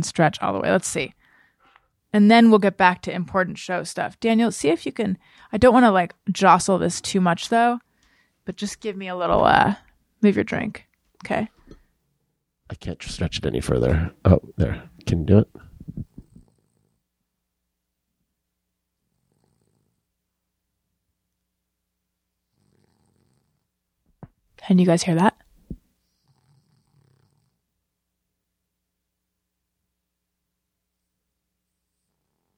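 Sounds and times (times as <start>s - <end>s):
speech: 0.0s - 1.2s, 2.1s - 7.9s, 8.5s - 11.6s, 12.7s - 16.0s, 24.6s - 25.4s
brief murmured question: 13.8s - 16.2s
sleeping female dog snoring while dreaming: 16.2s - 17.0s, 19.0s - 20.0s, 22.4s - 23.7s, 26.0s - 27.6s, 31.7s - 32.5s.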